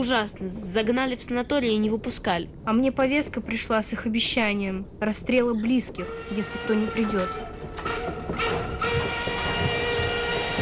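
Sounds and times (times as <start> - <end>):
speech: 0.0 - 8.5
wooden livestock freight wagon rolling on rails: 5.7 - 10.6
faint clattering: 7.0 - 10.6.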